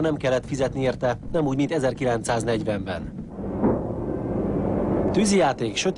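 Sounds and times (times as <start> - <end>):
speech: 0.0 - 3.2, 5.1 - 5.9
fireworks display booming: 3.2 - 5.4.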